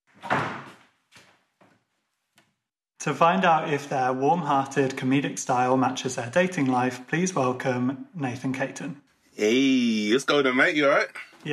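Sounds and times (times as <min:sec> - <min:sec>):
door closing thump: 0:00.2 - 0:00.8
speech: 0:03.0 - 0:11.5.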